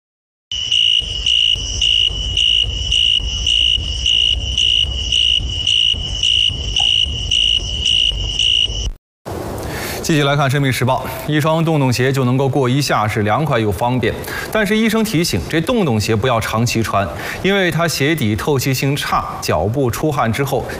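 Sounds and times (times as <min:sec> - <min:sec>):
bamboo zhuling insect chirping: 0:00.5 - 0:09.0
low rumble: 0:00.6 - 0:11.3
speech: 0:10.1 - 0:20.7.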